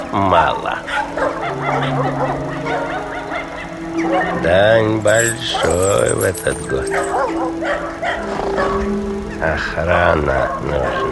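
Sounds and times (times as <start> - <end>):
speech: 0.1 - 3.0, 4.0 - 11.1
several dogs barking and yipping: 0.9 - 4.5, 5.1 - 8.9, 10.5 - 11.1
constant low hum: 3.0 - 10.3.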